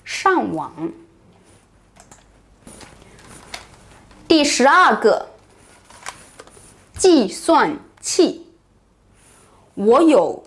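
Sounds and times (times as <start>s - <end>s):
speech: 0.2s - 1.1s, 4.3s - 5.3s, 7.0s - 8.4s, 9.8s - 10.4s
typing on a laptop keyboard: 2.0s - 4.3s.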